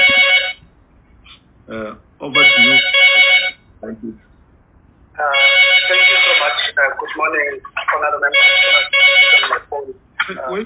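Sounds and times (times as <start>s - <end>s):
mobile phone ringtone: 0.0s - 0.6s, 2.3s - 3.6s, 5.3s - 6.8s, 8.3s - 9.6s.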